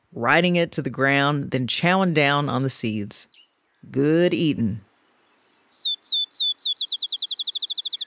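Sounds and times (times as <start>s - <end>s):
speech: 0.1s - 4.9s
field sparrow singing: 3.3s - 3.9s, 5.3s - 8.0s.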